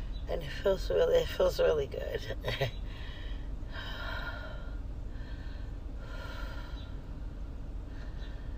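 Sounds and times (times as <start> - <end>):
steady low rumble: 0.0 - 8.5
speech: 0.3 - 3.1
heavy breathing while stretching: 2.8 - 8.5.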